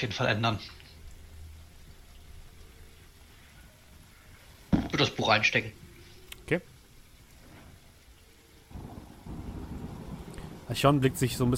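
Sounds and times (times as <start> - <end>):
speech: 0.0 - 0.8, 5.0 - 5.8, 6.5 - 6.7, 10.7 - 11.5
steady rain in a thunderstorm: 0.0 - 11.5
low rolling thunder: 8.7 - 11.5.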